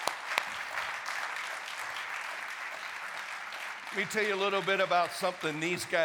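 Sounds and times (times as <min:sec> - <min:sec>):
audience applauding volunteers: 0:00.0 - 0:06.0
sharp claps: 0:00.0 - 0:06.0
speech: 0:03.9 - 0:06.0.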